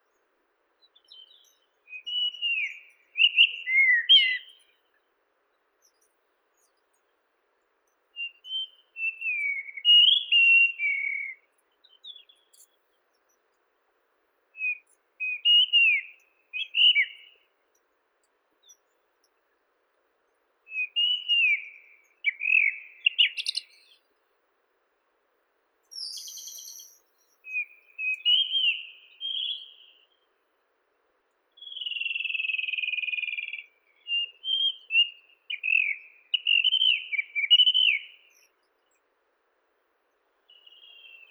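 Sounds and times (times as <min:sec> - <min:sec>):
Monticola gularis singing: 0:00.0 - 0:05.1, 0:07.8 - 0:13.6, 0:14.6 - 0:18.0, 0:20.7 - 0:24.1, 0:25.8 - 0:30.3, 0:31.5 - 0:39.0, 0:40.5 - 0:41.2.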